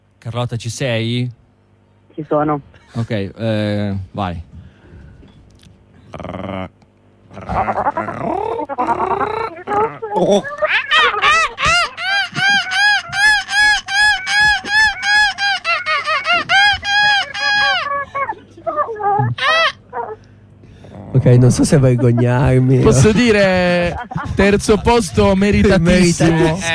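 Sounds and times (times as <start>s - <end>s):
speech: 0.2s - 1.4s, 2.2s - 4.5s, 10.3s - 10.6s, 21.2s - 26.7s
laughter: 7.3s - 19.8s, 21.2s - 26.7s
person imitating a seagull's cry: 7.3s - 20.3s.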